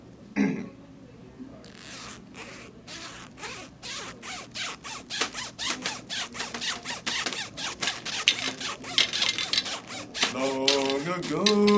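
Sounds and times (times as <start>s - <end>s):
tune played on a zipper, drink can and cracker box: 1.7s - 11.7s
crinkling and tapping on a drink can and cracker box: 4.8s - 11.7s
speech: 11.2s - 11.7s.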